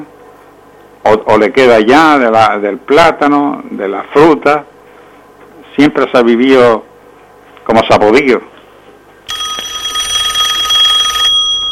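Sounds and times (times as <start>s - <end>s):
speech: 1.0s - 4.7s, 5.8s - 6.9s, 7.7s - 8.5s
telephone ringing with an incoming call: 9.3s - 11.6s.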